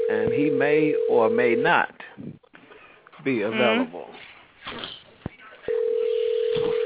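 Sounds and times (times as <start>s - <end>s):
telephone ring tone as an outgoing call is placed: 0.0s - 1.7s, 5.7s - 6.8s
speech: 0.1s - 2.4s, 3.2s - 5.0s.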